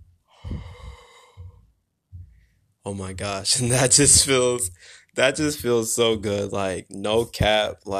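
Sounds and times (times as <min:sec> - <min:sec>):
slow airy yoga breathing in through nose and out through mouth: 0:00.3 - 0:01.7
speech: 0:02.8 - 0:07.9.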